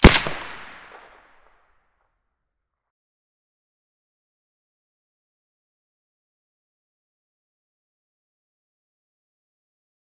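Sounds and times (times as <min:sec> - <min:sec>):
Saiga gun firing with silencer: 0:00.0 - 0:01.2.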